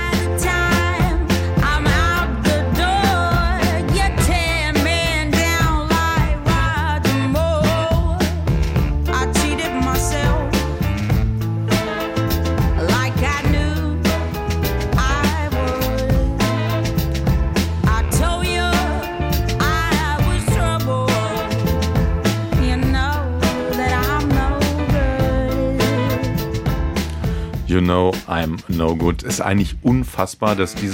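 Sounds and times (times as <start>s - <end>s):
female lead vocal in a soul song: 0.0s - 8.5s, 9.1s - 10.9s, 12.7s - 17.0s, 17.8s - 21.8s, 22.4s - 26.5s
horn-like backing in a soul song: 0.0s - 30.9s
soul song bass: 0.0s - 30.9s
steady soul song drums: 0.0s - 30.9s
speech: 28.0s - 30.9s.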